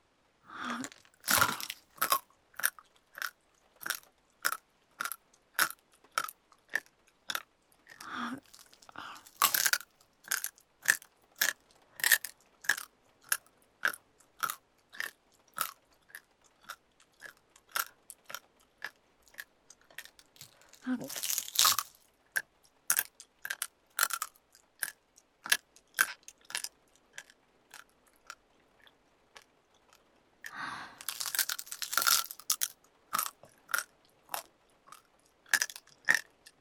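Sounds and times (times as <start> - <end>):
crunchy biting and chewing: 0.7 - 18.4, 19.4 - 22.0, 22.9 - 26.6, 30.9 - 36.2.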